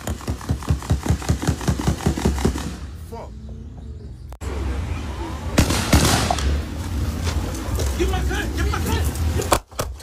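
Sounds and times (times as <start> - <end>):
gunshots in Shreveport: 0.0 - 3.0, 5.6 - 6.6
rumbling noisy background: 0.0 - 10.0.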